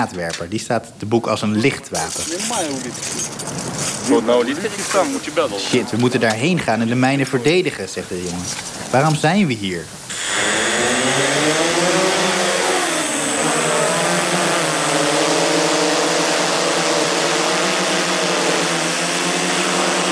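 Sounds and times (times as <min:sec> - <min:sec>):
speech: 0:00.0 - 0:10.0
new drone buzzing in flight over a field: 0:10.1 - 0:20.0.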